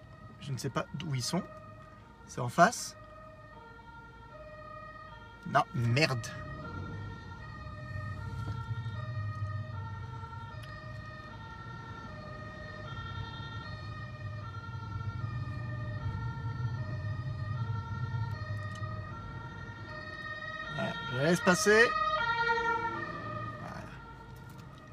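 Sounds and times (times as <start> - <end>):
fire engine siren wailing with stacked harmonic tones: 0.0 - 24.9
speech: 0.4 - 1.6, 2.3 - 3.0, 5.4 - 6.4, 21.4 - 22.0
low fire engine rumble: 3.0 - 24.9.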